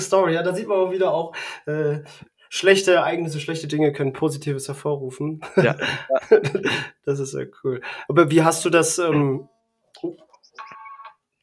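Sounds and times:
speech: 0:00.0 - 0:10.7
laughter: 0:05.4 - 0:06.9
alarm clock ticking: 0:09.0 - 0:09.7.

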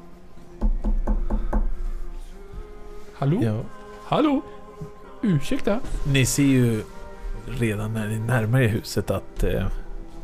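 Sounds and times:
knocking on a door: 0:00.6 - 0:01.8
speech: 0:03.2 - 0:10.2.

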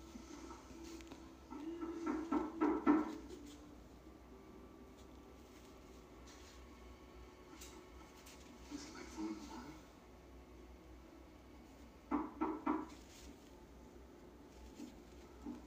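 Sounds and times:
low hum: 0:00.0 - 0:15.6
firm knocks on a door: 0:01.6 - 0:03.2, 0:12.1 - 0:13.0.

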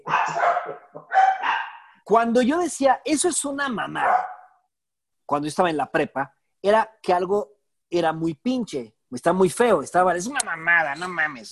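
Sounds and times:
small dog yapping: 0:00.0 - 0:01.9, 0:03.8 - 0:04.6
speech: 0:02.1 - 0:04.3, 0:05.3 - 0:11.5.

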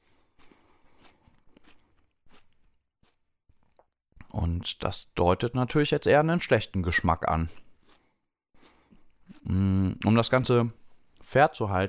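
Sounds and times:
person biting into and chewing a crisp apple: 0:00.4 - 0:04.3, 0:07.0 - 0:10.6
wet mouth sounds: 0:00.4 - 0:04.3, 0:08.6 - 0:10.1
speech: 0:04.4 - 0:07.6, 0:09.5 - 0:11.8.

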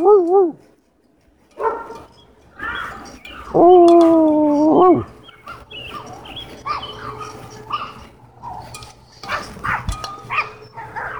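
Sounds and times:
puppy whiny yelping: 0:00.0 - 0:00.6, 0:01.6 - 0:08.7, 0:09.3 - 0:11.1
speech: 0:00.0 - 0:00.7, 0:03.5 - 0:05.1.

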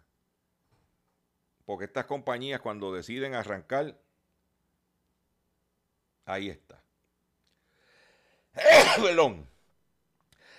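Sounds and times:
speech: 0:01.7 - 0:04.0, 0:06.3 - 0:06.8, 0:08.6 - 0:09.5
person sneezing: 0:08.6 - 0:09.2.

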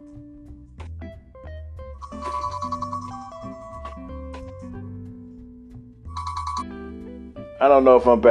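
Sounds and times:
melodic electronic phone ringtone: 0:02.0 - 0:04.1, 0:06.1 - 0:06.7
speech: 0:07.6 - 0:08.2.

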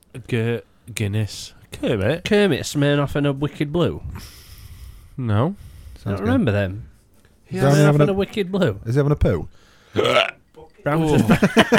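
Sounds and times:
speech: 0:00.1 - 0:04.4, 0:05.2 - 0:06.9, 0:07.5 - 0:11.7
person hiccuping: 0:10.0 - 0:10.4
laughter: 0:11.1 - 0:11.7.

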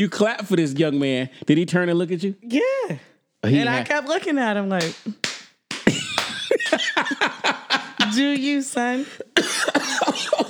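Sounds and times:
speech: 0:00.0 - 0:05.3, 0:08.1 - 0:10.4
laughter: 0:05.8 - 0:10.4
man coughing: 0:09.2 - 0:10.4.

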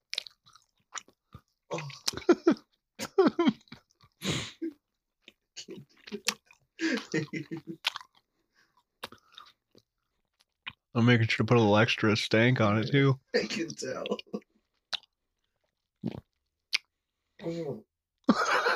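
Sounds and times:
person chewing a sticky fruit chew candy: 0:00.0 - 0:02.9, 0:03.5 - 0:04.2, 0:04.8 - 0:10.9, 0:13.6 - 0:17.1
laughter: 0:02.1 - 0:03.6, 0:06.8 - 0:07.8, 0:18.3 - 0:18.7
speech: 0:07.1 - 0:07.8, 0:11.0 - 0:14.3.

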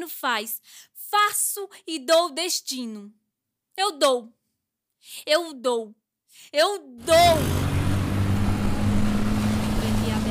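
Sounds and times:
speech: 0:00.0 - 0:03.2, 0:03.8 - 0:04.4, 0:05.0 - 0:07.6
car engine rumbling while pulling away: 0:07.0 - 0:10.2
road noise: 0:07.0 - 0:10.2.

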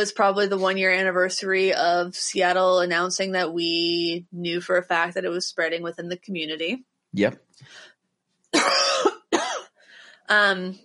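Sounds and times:
speech: 0:00.0 - 0:07.9, 0:08.6 - 0:09.2, 0:10.3 - 0:10.8
person coughing after swallowing saliva wrong: 0:08.6 - 0:09.6
soft raspy breath: 0:09.8 - 0:10.3.

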